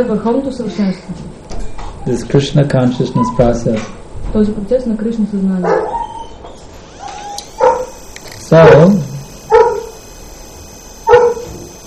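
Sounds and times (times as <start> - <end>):
speech: 0.0 - 1.4, 2.0 - 6.0, 8.5 - 9.1
dog barking: 5.6 - 6.2, 7.6 - 8.0, 9.5 - 10.0, 11.0 - 11.5.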